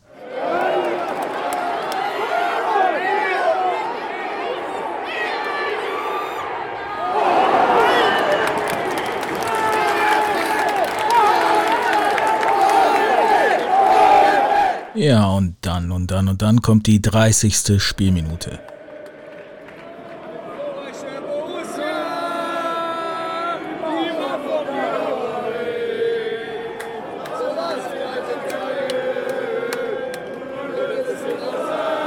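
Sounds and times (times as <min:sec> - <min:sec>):
large football stadium crowd chanting: 0:00.1 - 0:15.0, 0:18.6 - 0:32.0
speech: 0:15.1 - 0:18.7.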